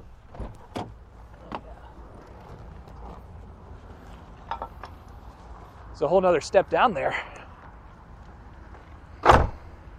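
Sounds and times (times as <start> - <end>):
vehicle door slammed shut on seatbelt: 0.3 - 1.7, 9.2 - 9.6
speech: 6.0 - 7.3.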